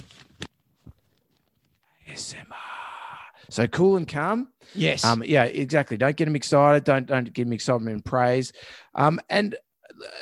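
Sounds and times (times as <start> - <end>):
piece of paper being crinkled: 0.0 - 1.8
speech: 2.2 - 2.8, 3.4 - 10.2.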